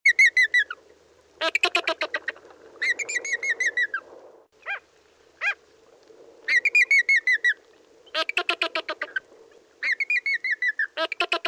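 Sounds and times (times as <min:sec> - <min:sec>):
flamingo: 0:01.4 - 0:04.8, 0:06.5 - 0:11.4.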